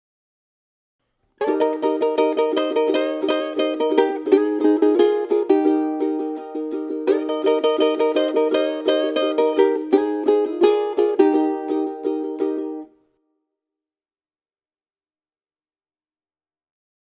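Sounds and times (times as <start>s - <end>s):
ukulele solo: 1.4s - 13.0s.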